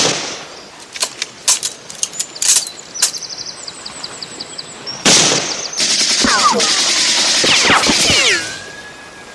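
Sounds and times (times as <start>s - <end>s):
rifle fire: 5.1s - 8.2s.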